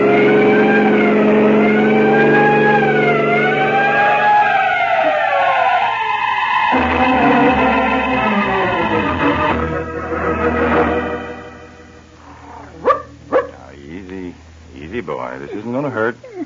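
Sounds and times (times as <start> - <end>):
car siren wailing while driving: 0.0 - 11.4
car engine rumbling and shifting: 0.0 - 16.3.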